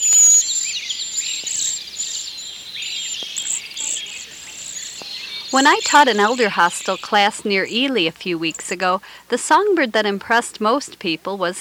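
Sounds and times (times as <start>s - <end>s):
cedar waxwing calls: 0.0s - 8.8s
speech: 5.5s - 11.6s.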